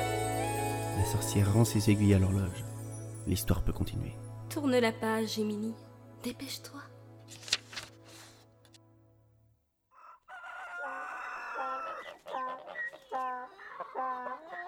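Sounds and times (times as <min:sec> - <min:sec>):
speech: 0:01.1 - 0:07.5
rooster crowing: 0:09.9 - 0:14.6.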